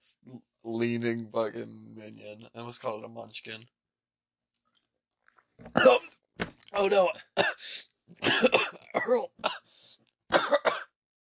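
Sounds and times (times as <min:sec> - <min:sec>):
speech: 0:00.2 - 0:03.8, 0:05.6 - 0:06.1, 0:06.8 - 0:09.6, 0:10.3 - 0:10.8
person clearing throat: 0:05.7 - 0:06.2, 0:08.2 - 0:09.6, 0:10.3 - 0:11.0
person coughing after swallowing aloe water wrong: 0:05.7 - 0:06.2, 0:07.4 - 0:09.7, 0:10.3 - 0:11.0.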